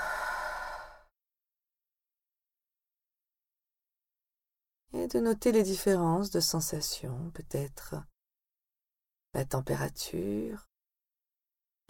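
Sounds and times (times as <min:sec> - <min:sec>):
breath pushed out through an open mouth during a breathing meditation: 0:00.0 - 0:01.1
speech: 0:05.1 - 0:08.1, 0:09.3 - 0:10.7.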